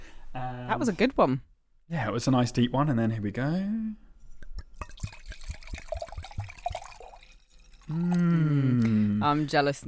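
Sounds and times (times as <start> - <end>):
speech: 0.4 - 4.0, 7.9 - 9.8
wine glugging from a half-drunk bottle: 4.2 - 9.1.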